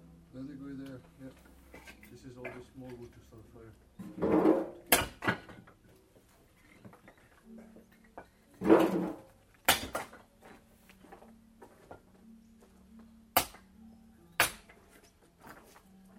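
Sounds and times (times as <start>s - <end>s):
wood chopping: 4.2s - 5.6s, 8.6s - 10.2s, 13.3s - 13.7s, 14.4s - 14.8s.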